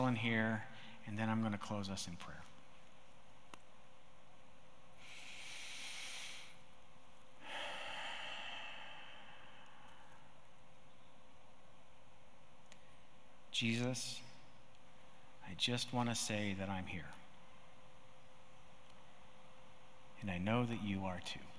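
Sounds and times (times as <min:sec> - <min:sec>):
faint low hiss: 0:00.0 - 0:21.5
speech: 0:00.1 - 0:02.6, 0:13.6 - 0:14.3, 0:15.5 - 0:17.2, 0:20.2 - 0:21.5
group taking slow breaths at a prayer session: 0:00.7 - 0:01.0, 0:05.0 - 0:06.7, 0:07.4 - 0:10.6.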